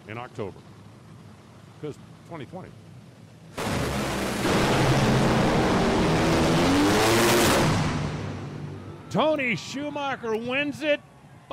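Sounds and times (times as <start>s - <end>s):
drag race car engines roaring at full throttle in a TV broadcast mix: 0.0s - 11.5s
speech: 0.1s - 0.7s, 1.8s - 2.8s, 9.1s - 11.5s.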